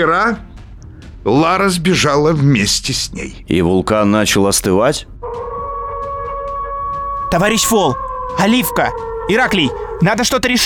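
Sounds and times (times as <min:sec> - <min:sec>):
speech: 0:00.0 - 0:00.5, 0:01.2 - 0:05.5, 0:07.3 - 0:10.6
wolves howling: 0:05.2 - 0:10.6.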